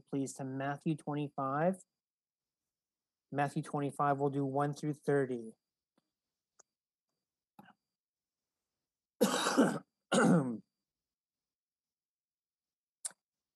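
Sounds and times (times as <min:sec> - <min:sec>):
speech: 0:00.1 - 0:02.0, 0:03.3 - 0:05.6
loud throat-clearing coughs: 0:09.2 - 0:10.7.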